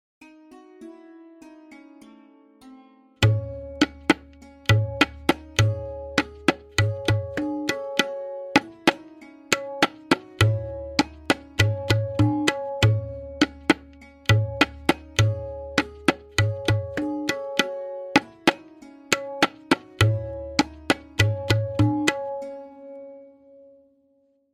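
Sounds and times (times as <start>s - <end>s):
lehra melody: 0.2s - 23.9s
tabla playing a variation in tintal: 3.2s - 22.6s.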